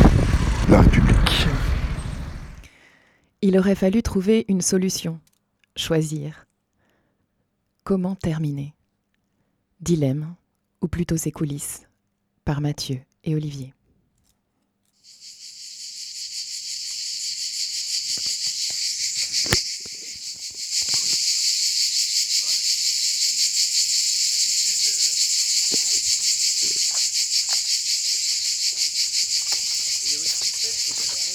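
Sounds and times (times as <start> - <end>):
dense chorus of cicadas buzzing: 0.0 - 2.6, 15.0 - 31.3
speech: 3.4 - 6.5, 7.9 - 8.8, 9.8 - 11.9, 12.5 - 13.8.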